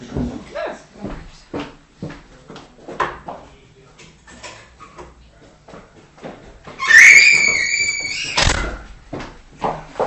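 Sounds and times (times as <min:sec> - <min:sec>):
door pulled shut with a long creak: 0:06.8 - 0:08.9.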